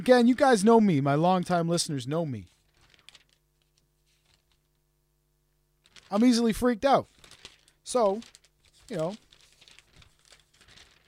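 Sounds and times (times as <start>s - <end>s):
speech: 0.0s - 2.6s, 6.1s - 7.1s, 7.9s - 9.2s
paper pages being flipped through: 2.5s - 4.8s, 5.8s - 6.3s, 7.1s - 11.0s.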